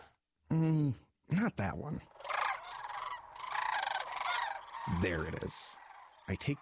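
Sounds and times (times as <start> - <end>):
speech: 0.6 - 2.2, 4.9 - 6.6
harsh honking bird calls played back: 2.2 - 6.6.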